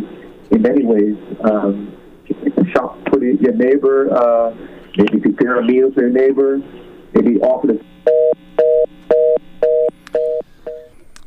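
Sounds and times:
speech: 0.5s - 8.4s
telephone line two-pitch beeps after a call-in phone line drops: 8.0s - 10.9s.

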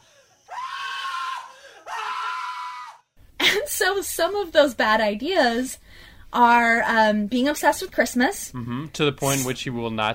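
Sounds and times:
man screaming: 0.5s - 3.0s
speech: 3.7s - 10.1s.

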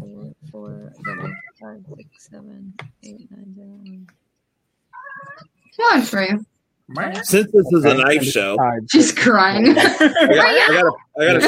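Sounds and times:
cat meowing: 1.0s - 1.6s, 4.9s - 5.6s
speech: 1.7s - 4.2s, 5.2s - 11.4s
laughter: 9.6s - 11.4s.

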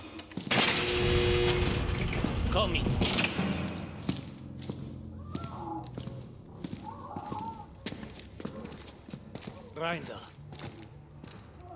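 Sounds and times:
door opening with rushing whoosh and hiss: 0.5s - 4.0s
speech: 2.6s - 3.2s, 9.8s - 10.4s.

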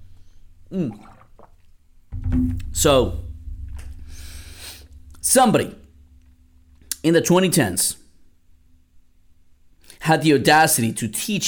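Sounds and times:
speech: 0.7s - 1.2s, 2.3s - 3.2s, 5.2s - 5.8s, 7.0s - 8.0s, 10.1s - 11.4s
wet slurp and swallow of water: 0.9s - 1.8s.

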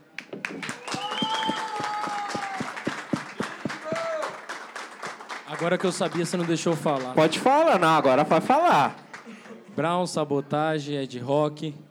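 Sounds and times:
cheering voices: 0.0s - 9.7s
crowd applauding: 0.0s - 9.8s
whistles: 0.2s - 4.9s
speech: 5.6s - 9.0s, 9.8s - 11.8s.

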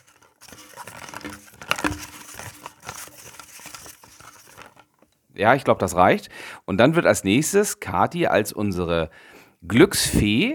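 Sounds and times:
paper entries rustling while mixed in a lottery drum: 0.0s - 4.9s
speech: 5.4s - 10.5s.

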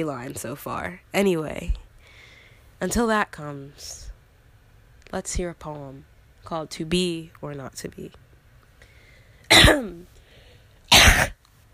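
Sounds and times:
speech: 0.0s - 1.8s, 2.8s - 4.1s, 5.1s - 8.2s, 9.6s - 10.1s
person coughing and clearing phlegm from throat: 9.5s - 10.0s, 10.9s - 11.4s.

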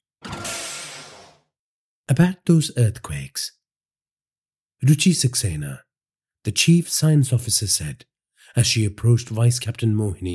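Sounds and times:
cockpit door sliding open with a mechanical whoosh: 0.2s - 1.4s
speech: 2.1s - 3.6s, 4.8s - 10.3s.

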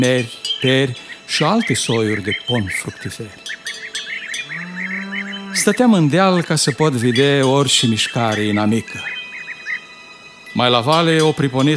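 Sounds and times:
speech: 0.0s - 3.5s, 5.6s - 9.2s, 10.6s - 11.7s
small birds chirping: 0.0s - 11.7s
cow mooing: 4.3s - 6.1s.

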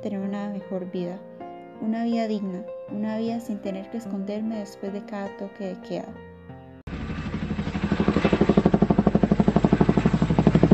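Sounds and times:
speech: 0.0s - 6.3s
helicopter rotor chopping: 6.9s - 10.7s.

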